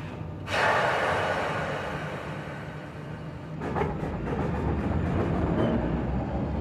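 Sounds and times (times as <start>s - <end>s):
loud hiss of released steam from a departing train: 0.0s - 3.6s
departing train engine rumbling and chuffing: 0.0s - 6.5s.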